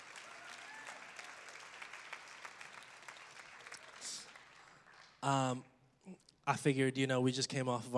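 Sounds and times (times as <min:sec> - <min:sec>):
audience applause: 0:00.0 - 0:05.4
speech: 0:05.2 - 0:07.9.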